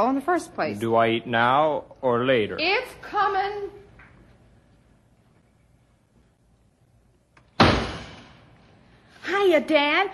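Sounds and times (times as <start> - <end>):
speech: 0.0 - 3.8, 9.3 - 10.1
door slamming shut: 7.6 - 8.4.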